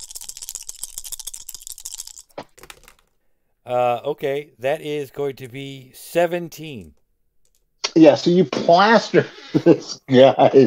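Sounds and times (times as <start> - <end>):
four dice rattling and tumbling across a surface: 0.0 - 3.2
speech: 3.7 - 7.0, 7.9 - 10.6.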